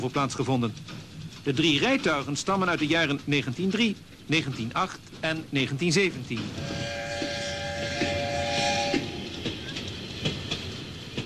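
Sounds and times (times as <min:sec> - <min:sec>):
speech: 0:00.0 - 0:07.0
small old train pulling three carriages rumbling on single-track rails: 0:00.0 - 0:11.2
whistle-like tone from small old train: 0:06.6 - 0:09.8.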